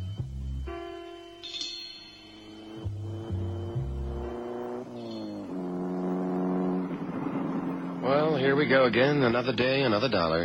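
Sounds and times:
car engine humming while driving and shifting through gears: 2.3 - 9.3
speech: 8.7 - 10.4.

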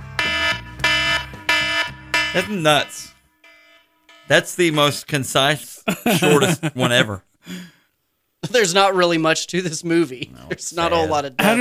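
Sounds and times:
timer alarm blaring in harsh buzzing bursts: 0.0 - 4.8
speech: 2.3 - 3.2, 4.3 - 7.8, 8.4 - 11.6
laughter: 5.9 - 7.2.

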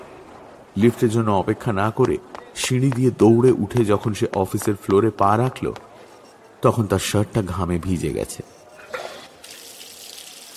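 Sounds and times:
speech: 0.8 - 5.9, 6.6 - 8.6
water running from a tap in a men's washroom: 9.4 - 10.5.

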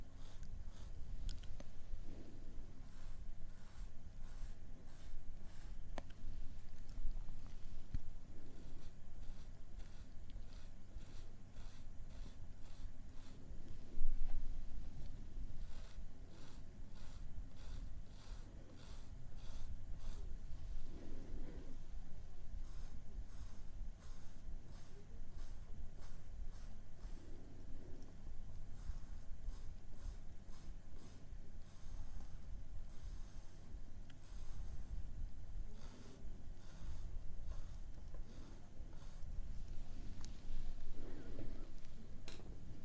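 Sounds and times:
makeup being applied to a doll head, brushing and rubbing: 0.0 - 21.8, 22.4 - 42.0
low steady hum: 0.0 - 42.8
faint whisper-like breaths: 38.2 - 42.2.

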